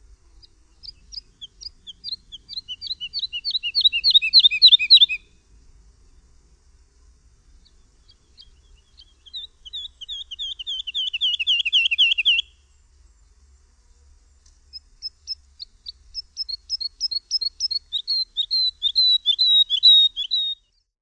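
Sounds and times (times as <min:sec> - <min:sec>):
lark singing: 0:00.4 - 0:05.3, 0:07.6 - 0:12.6, 0:14.7 - 0:20.9.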